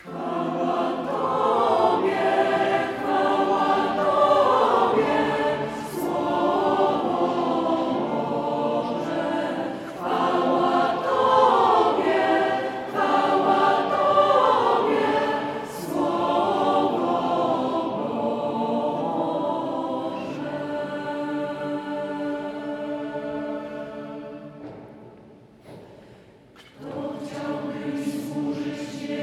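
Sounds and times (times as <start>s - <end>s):
worship song: 0.0s - 29.2s.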